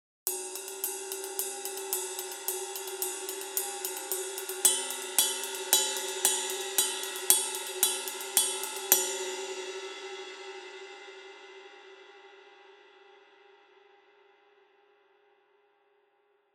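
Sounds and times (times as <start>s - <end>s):
resonant 20-inch rock heavy ride cymbal: 0.3s - 11.4s.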